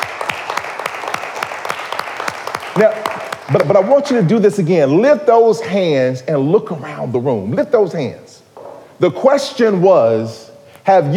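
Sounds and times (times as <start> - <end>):
audience applauding: 0.0 - 3.8
speech: 2.8 - 8.4, 9.0 - 11.1.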